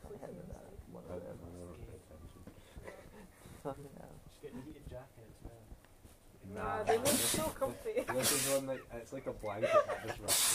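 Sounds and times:
speech: 0:03.6 - 0:05.8, 0:06.4 - 0:10.5
sneeze: 0:06.9 - 0:07.4, 0:08.2 - 0:08.6, 0:10.3 - 0:10.5
laughter: 0:07.0 - 0:10.5.

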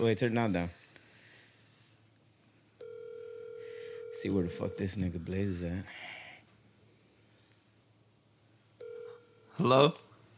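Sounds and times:
speech: 0:00.0 - 0:00.8, 0:04.2 - 0:06.1, 0:09.6 - 0:10.0
phone ringtone: 0:02.8 - 0:05.1, 0:08.8 - 0:09.6.

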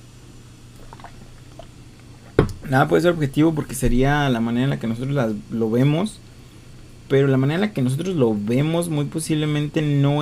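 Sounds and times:
person sipping and swallowing water from a small glass: 0:00.7 - 0:02.6
speech: 0:02.7 - 0:06.3, 0:07.1 - 0:10.2.

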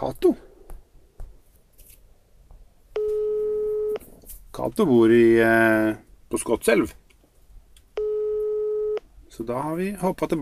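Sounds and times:
speech: 0:00.0 - 0:00.4, 0:04.6 - 0:07.0, 0:09.4 - 0:10.3
telephone ringback tone on an outgoing call: 0:03.0 - 0:04.0, 0:08.0 - 0:09.0.

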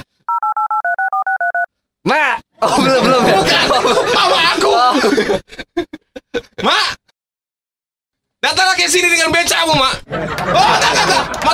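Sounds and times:
two-tone telephone dialing beeps while placing a call: 0:00.3 - 0:01.7
speech: 0:02.0 - 0:05.6, 0:08.9 - 0:11.5
laughter: 0:02.6 - 0:06.8, 0:09.9 - 0:11.5.

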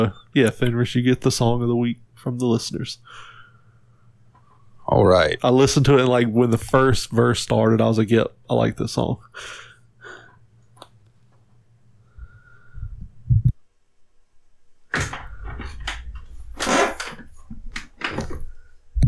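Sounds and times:
speech: 0:00.0 - 0:03.3, 0:04.9 - 0:09.7
low hum: 0:12.0 - 0:16.7
chair creaking and squeaking: 0:14.9 - 0:18.7.

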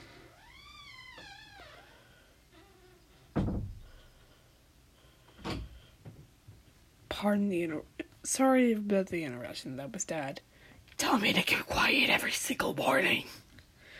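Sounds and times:
door creaking with a rising and falling squeal: 0:00.1 - 0:04.1
door thudding shut: 0:03.3 - 0:04.0
speech: 0:07.2 - 0:13.4.

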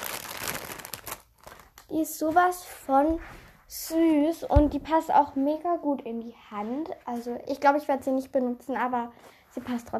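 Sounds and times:
crinkly plastic bag rustling as soap is pulled out: 0:00.0 - 0:02.0
speech: 0:01.9 - 0:09.9.

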